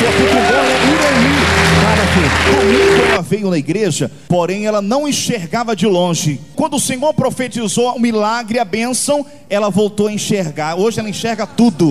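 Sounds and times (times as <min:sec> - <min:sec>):
audience applauding loudly: 0:00.0 - 0:03.2
speech: 0:02.3 - 0:11.8.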